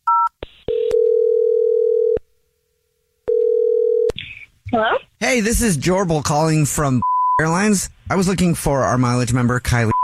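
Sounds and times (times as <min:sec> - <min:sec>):
loud steady telephone dial tone: 0:00.1 - 0:02.2, 0:03.3 - 0:04.1
speech: 0:04.7 - 0:09.9.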